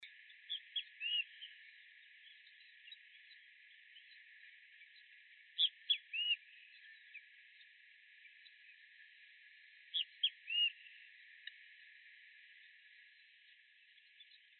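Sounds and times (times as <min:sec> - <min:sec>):
Great Kiskadee Pitangus sulphuratus calling: 0:00.5 - 0:01.5, 0:05.6 - 0:07.1, 0:09.9 - 0:10.9.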